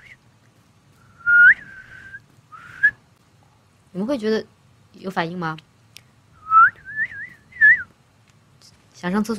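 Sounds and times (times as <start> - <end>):
person whistling short plain tones: 1.2 - 3.0, 6.4 - 7.9
speech: 3.9 - 5.7, 9.0 - 9.3.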